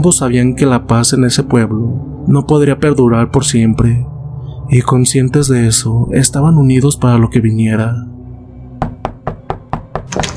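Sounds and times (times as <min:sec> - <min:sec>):
speech: 0:00.0 - 0:08.2
sharp knocks on a door: 0:08.8 - 0:10.3.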